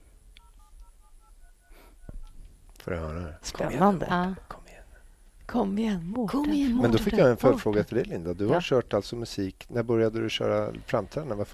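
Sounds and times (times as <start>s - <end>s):
low noise: 0.0s - 11.5s
telephone keypad dialing tones: 0.4s - 2.3s
speech: 2.8s - 4.5s, 5.5s - 11.5s.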